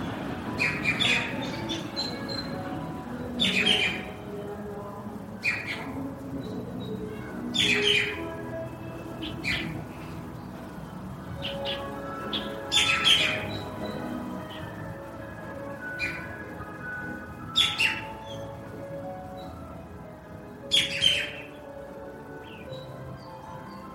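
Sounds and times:
low murmur of voices in a park: 0.0 - 19.3
birds chirping and squawking in a park: 0.0 - 23.9
general outdoor hum in a park: 0.0 - 23.9.

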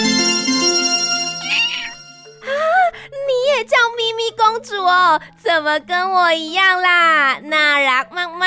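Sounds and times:
soft music: 0.0 - 8.4
small kitten meowing: 1.4 - 2.0
speech: 5.2 - 8.4.

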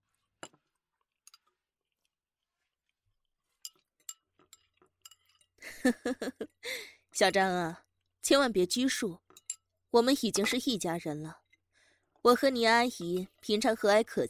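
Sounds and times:
bowls and chopsticks clinking during a meal: 3.5 - 5.6, 9.2 - 10.7
speech: 5.8 - 9.2, 9.9 - 11.4, 12.2 - 14.2.

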